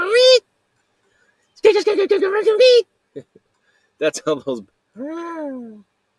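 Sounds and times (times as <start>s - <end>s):
speech: 1.8s - 3.4s, 4.0s - 5.9s
human voice imitating a collared Barbary dove cooing: 5.0s - 5.9s.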